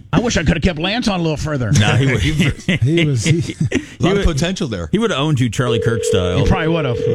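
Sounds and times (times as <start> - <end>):
speech: 0.2 - 7.1
laughter: 1.8 - 4.1
touch-tone telephone dialing: 5.8 - 7.1.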